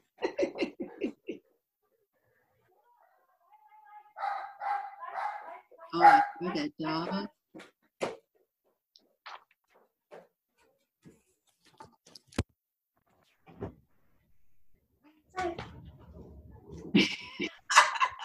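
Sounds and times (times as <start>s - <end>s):
laughter: 0.2s - 1.5s, 16.8s - 18.1s
dog barking: 4.1s - 6.5s
speech: 5.9s - 7.7s.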